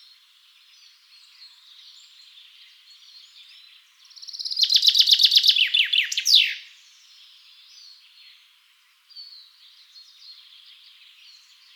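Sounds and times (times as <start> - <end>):
common chaffinch Fringilla coelebs song: 4.2 - 6.7.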